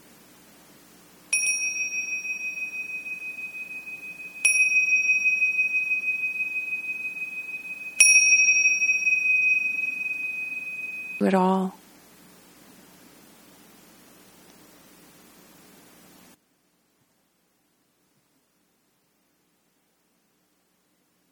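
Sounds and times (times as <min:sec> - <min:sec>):
faint low hum: 0:00.0 - 0:21.2
meditation bell strikes to close practice: 0:01.3 - 0:11.2
speech: 0:11.2 - 0:11.8.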